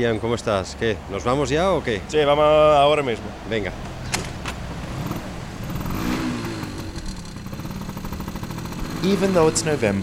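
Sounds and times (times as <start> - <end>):
speech: 0.0 - 3.9, 9.0 - 10.0
steady rumble of street noise: 0.0 - 10.0
small two-wheeler scooter engine revving and pulling away: 3.8 - 10.0.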